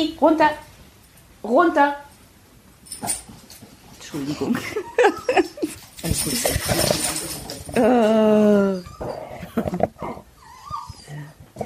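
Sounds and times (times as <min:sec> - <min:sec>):
speech: 0:00.0 - 0:00.7, 0:01.4 - 0:02.0, 0:02.9 - 0:03.4, 0:04.1 - 0:09.8
dog whimpering: 0:07.7 - 0:11.6.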